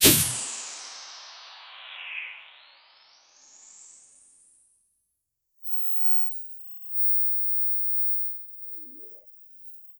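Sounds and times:
smooth left to right swipe: 0.0 - 1.4.

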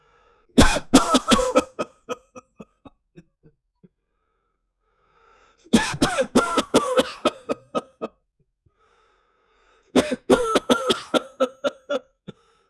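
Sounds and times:
man coughing: 0.6 - 3.3, 5.7 - 8.1, 10.0 - 12.0.

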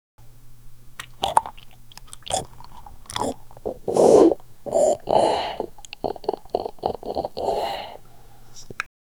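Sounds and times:
person drinking a cold drink: 0.2 - 8.9.

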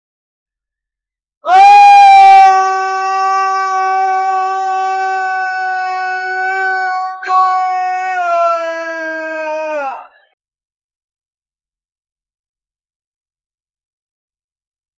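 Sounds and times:
Roman soldier screaming: 1.4 - 10.2.

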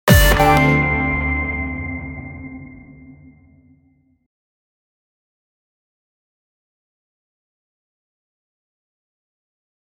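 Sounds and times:
juicy hit sound: 0.1 - 3.6.

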